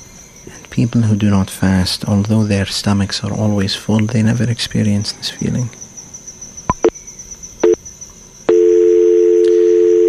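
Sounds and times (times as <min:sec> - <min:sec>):
faint high whine: 0:00.0 - 0:10.0
speech: 0:00.4 - 0:05.8
steady loud continuous telephone line tone: 0:07.6 - 0:07.8, 0:08.4 - 0:10.0
telephone line clicks and brief beeps while connecting a caller: 0:08.5 - 0:10.0.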